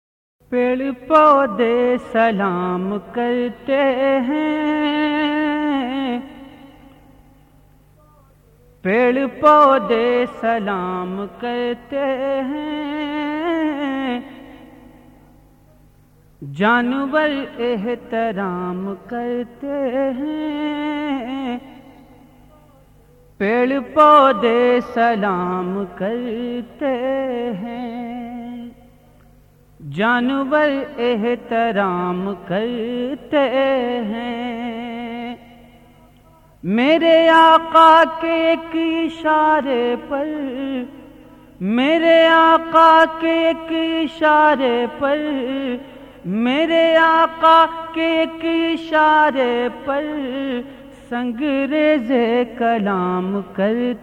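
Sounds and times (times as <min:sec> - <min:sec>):
Islamic qawwali and naat singing: 0:00.5 - 0:54.0.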